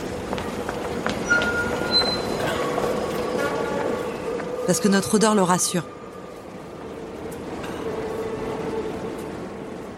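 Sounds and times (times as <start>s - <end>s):
metro train rolling with a steady rumble: 0.0s - 9.9s
high-pitched metallic squeals from metro train wheels: 1.2s - 3.3s
speech: 4.7s - 6.0s.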